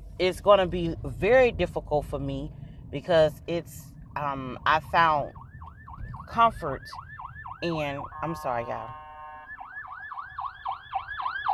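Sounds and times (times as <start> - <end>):
low traffic rumble: 0.0 - 11.5
speech: 0.2 - 5.4, 6.3 - 7.0, 7.6 - 9.0
emergency vehicle siren in fast yelp mode: 4.8 - 11.5.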